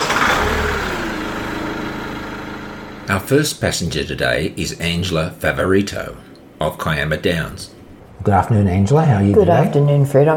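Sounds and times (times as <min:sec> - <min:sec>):
community bus engine starting and idling: 0:00.0 - 0:03.6
speech: 0:03.1 - 0:10.3.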